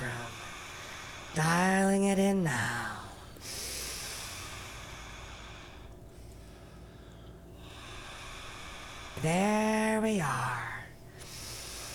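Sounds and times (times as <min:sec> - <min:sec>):
deep audible breathing: 0:00.0 - 0:01.5, 0:02.8 - 0:09.2, 0:11.1 - 0:11.9
speech: 0:01.4 - 0:02.8, 0:09.2 - 0:10.7.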